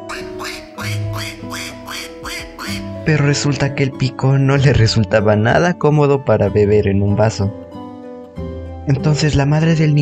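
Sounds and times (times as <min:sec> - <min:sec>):
duck quacking: 0:00.0 - 0:03.0
speech: 0:03.1 - 0:07.6, 0:08.9 - 0:10.0.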